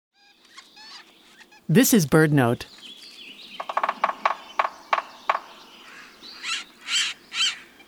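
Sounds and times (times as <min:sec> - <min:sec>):
speech: 0:01.7 - 0:02.8
sapsucker drilling holes in tree bark: 0:03.6 - 0:05.6.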